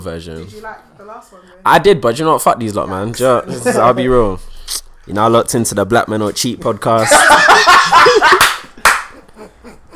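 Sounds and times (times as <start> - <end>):
speech: 0.0 - 8.5
people laughing: 7.0 - 9.9
loud sharp hand claps: 8.3 - 9.2.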